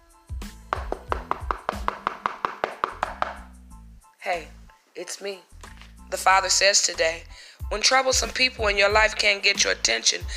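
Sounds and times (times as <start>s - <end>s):
rapid sharp knocks with hollow thud: 0.7s - 3.5s
speech: 4.3s - 5.5s, 6.1s - 10.3s.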